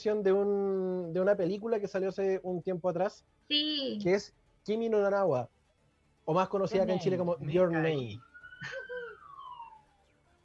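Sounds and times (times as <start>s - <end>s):
speech: 0.0s - 5.6s, 6.3s - 8.8s
faint police siren wailing: 6.7s - 10.4s.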